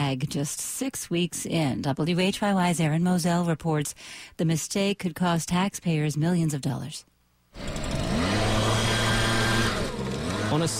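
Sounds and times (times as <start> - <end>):
speech: 0.1 - 8.0, 10.5 - 10.7
leaf blowers worked by city crew pushing litter down a street: 7.6 - 10.7.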